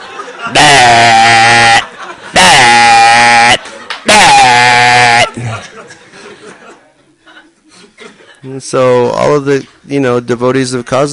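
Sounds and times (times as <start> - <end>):
laughter: 0.0 - 8.6
speech: 0.4 - 1.2, 8.4 - 11.1
sheep bleating: 0.5 - 5.4.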